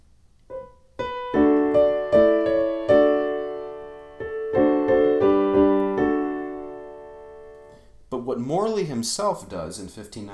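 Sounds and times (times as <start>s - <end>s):
melody harmonized with modern tonal chords: 0.5s - 7.9s
speech: 8.5s - 10.3s.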